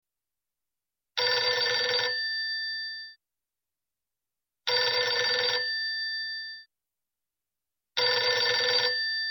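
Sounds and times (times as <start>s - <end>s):
country phone ringing: 1.2s - 2.3s, 4.7s - 5.8s, 8.0s - 9.2s.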